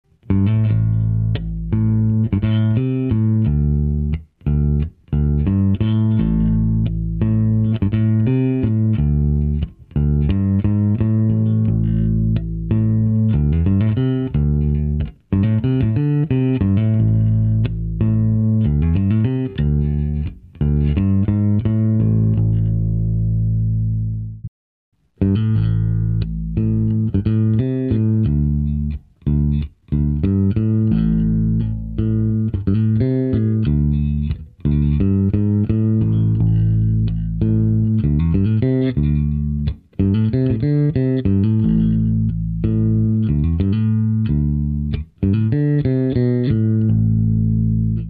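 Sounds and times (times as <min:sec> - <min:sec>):
jazz bass through Faital speaker and bass amplifier: 0:00.0 - 0:24.5, 0:25.1 - 0:48.0.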